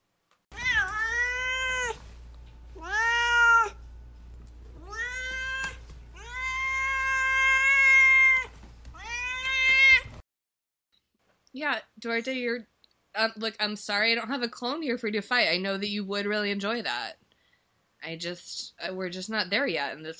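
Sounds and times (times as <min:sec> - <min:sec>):
pet cat meowing: 0:00.5 - 0:02.0, 0:02.8 - 0:03.8, 0:04.8 - 0:10.2
speech: 0:11.6 - 0:17.2, 0:18.0 - 0:20.1.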